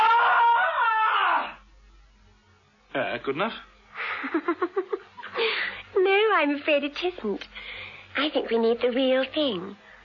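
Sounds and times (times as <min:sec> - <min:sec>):
woman's loud shrill bloodcurdling scream: 0:00.0 - 0:01.6
speech: 0:03.0 - 0:07.5, 0:08.2 - 0:09.8.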